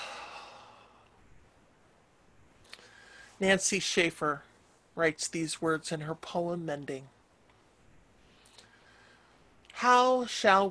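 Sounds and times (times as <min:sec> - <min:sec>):
deep breath with a slow soft airy exhale: 0:00.0 - 0:01.2, 0:02.6 - 0:03.4, 0:08.2 - 0:09.4
speech: 0:03.4 - 0:07.2, 0:09.8 - 0:10.7.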